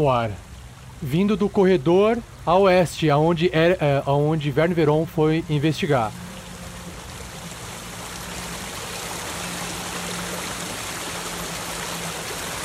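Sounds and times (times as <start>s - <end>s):
speech: 0.0s - 6.2s
water rushing in a flowing stream: 0.0s - 12.6s.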